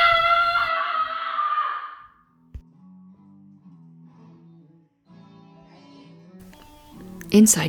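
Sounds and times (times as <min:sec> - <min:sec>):
man screaming in fright: 0:00.0 - 0:02.0
speech: 0:07.3 - 0:07.6.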